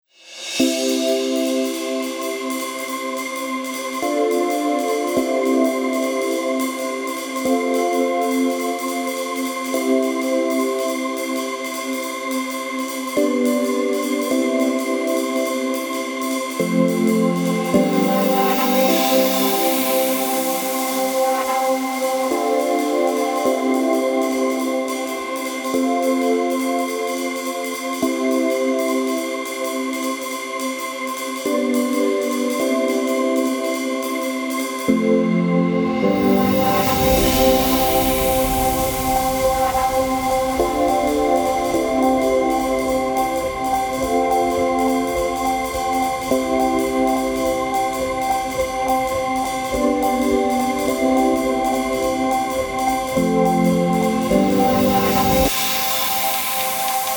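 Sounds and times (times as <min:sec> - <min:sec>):
ambient version of background music: 0:00.5 - 0:57.1.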